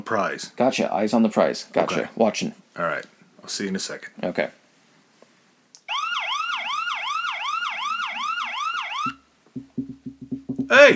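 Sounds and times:
speech: 0.0s - 4.6s
emergency vehicle siren yelping: 5.9s - 9.2s.

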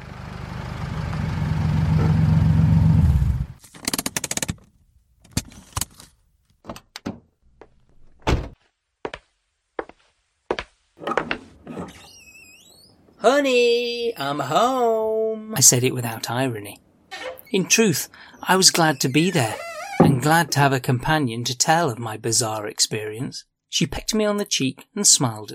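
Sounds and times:
car engine rumbling as car drives: 0.0s - 3.6s
speech: 13.2s - 25.5s.

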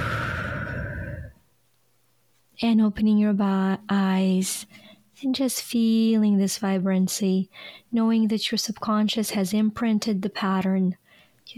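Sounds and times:
slow deep breath exhaled through the mouth during a guided breathing exercise: 0.0s - 1.4s
speech: 2.6s - 11.5s.

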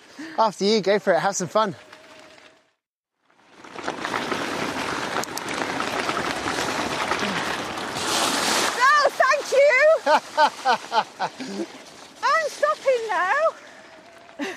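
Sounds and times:
speech: 0.4s - 1.9s, 10.4s - 11.9s
e-bike wheels churning through shallow water: 3.3s - 14.5s
laughter: 10.0s - 11.7s.

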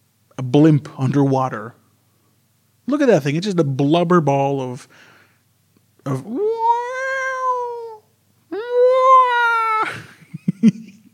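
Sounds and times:
speech: 0.4s - 1.8s, 2.9s - 5.1s, 6.0s - 6.8s
person imitating a whale call: 6.2s - 9.9s.

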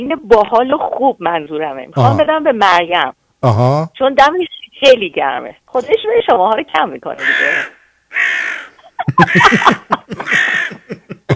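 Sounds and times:
speech: 0.0s - 8.4s, 9.1s - 9.9s
crow cawing loudly and harshly: 7.2s - 9.6s, 10.2s - 10.8s
choppy cackling squawks: 7.2s - 10.9s.

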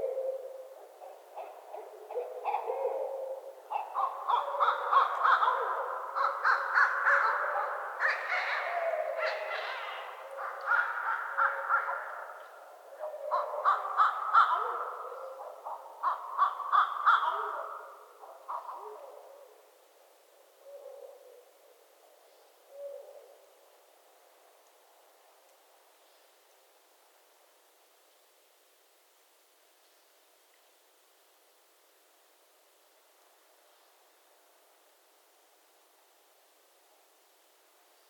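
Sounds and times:
barred owls hooting and cackling in mating season in Northern Michigan: 0.0s - 12.4s, 13.0s - 19.6s.

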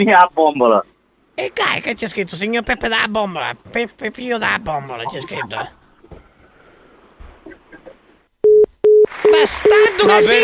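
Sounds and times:
speech: 0.0s - 5.8s, 9.3s - 10.4s
telephone busy tone: 8.4s - 10.4s.

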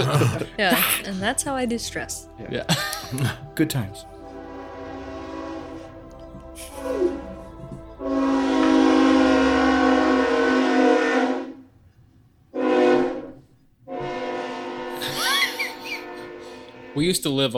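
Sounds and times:
laughter: 0.0s - 1.2s, 2.5s - 3.6s, 15.0s - 16.3s
speech: 0.0s - 4.1s, 17.0s - 17.5s
train horn blasts: 3.5s - 11.7s, 12.5s - 17.5s.

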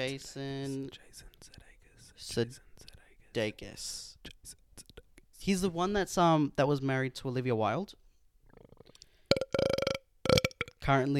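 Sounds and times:
speech: 0.0s - 1.6s, 2.2s - 2.7s, 3.4s - 4.6s, 5.4s - 8.0s, 10.8s - 11.1s
loud croaky rattling burp: 8.5s - 10.8s.

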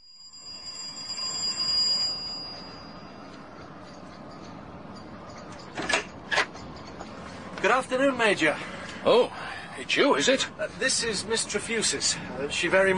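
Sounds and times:
doorbell ringing with a bright metallic tone: 0.0s - 5.8s
speech: 7.7s - 12.9s.

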